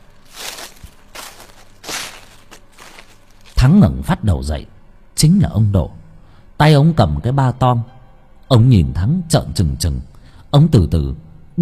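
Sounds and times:
footsteps crunching on rotten leaves: 0.0s - 3.7s
speech: 3.6s - 6.0s, 6.6s - 11.6s.

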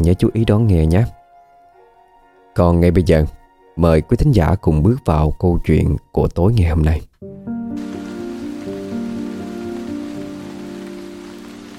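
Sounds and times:
speech: 0.0s - 1.2s, 2.6s - 7.1s
heavy rain pouring down at night over a poor hamlet on newly cleared land: 7.8s - 11.7s.

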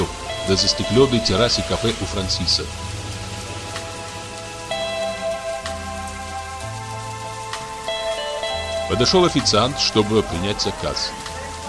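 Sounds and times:
heavy rain pouring down on a city square: 0.0s - 11.6s
sustained low musical tones shifting pitch: 0.0s - 11.6s
speech: 0.5s - 2.9s, 8.9s - 11.3s.

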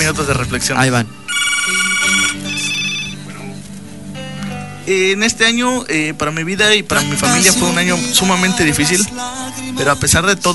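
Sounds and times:
speech: 0.0s - 1.8s, 4.9s - 10.5s
low steady tonal background: 0.0s - 9.8s
telephone ringing with high electronic ring tones: 1.3s - 3.4s.

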